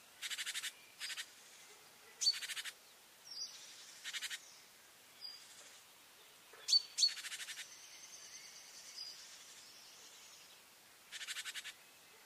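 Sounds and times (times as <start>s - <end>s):
faint steady background hiss: 0.0s - 12.2s
great tit Parus major giving buzzy churring rattles: 0.2s - 1.3s, 2.2s - 4.6s, 6.6s - 9.2s, 11.1s - 12.2s.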